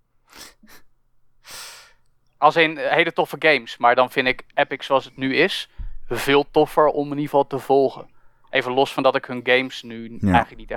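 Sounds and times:
speech: 2.4 - 10.7
person yawning: 10.2 - 10.6.

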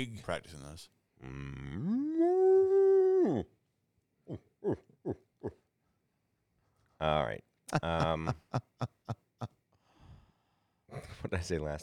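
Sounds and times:
speech: 0.0 - 2.4, 3.2 - 3.6, 4.3 - 5.6, 7.0 - 9.5, 10.9 - 11.8
person imitating a bull elk call and grunts: 1.2 - 3.5, 4.2 - 5.6
laughter: 7.7 - 9.6.

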